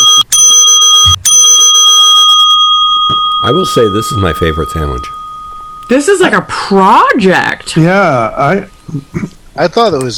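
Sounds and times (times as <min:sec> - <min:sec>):
bright bell dings with metallic tone: 0:00.0 - 0:06.6
speech: 0:03.4 - 0:05.2, 0:05.9 - 0:10.1.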